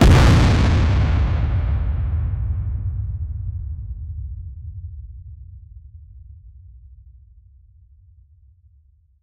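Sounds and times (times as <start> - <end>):
enemy attack tremor stomp: 0.0 - 4.1.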